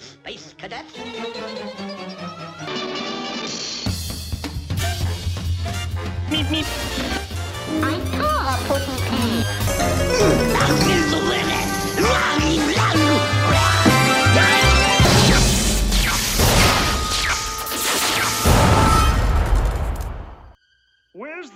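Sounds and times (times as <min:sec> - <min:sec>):
speech: 0:00.3 - 0:02.8, 0:06.3 - 0:07.1
dramatic podcast intro music with sustained tones: 0:01.0 - 0:21.1
crashing booming hits: 0:15.0 - 0:17.2, 0:18.4 - 0:20.4.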